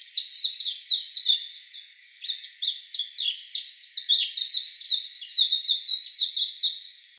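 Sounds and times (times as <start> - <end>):
Japanese white-eye twittering song: 0.0 - 7.1.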